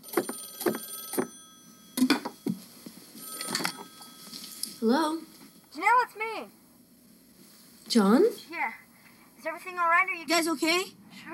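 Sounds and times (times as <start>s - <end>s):
old-style telephone bell ringing: 0.0s - 5.7s
speech: 4.8s - 6.6s, 7.9s - 8.8s, 9.4s - 11.3s.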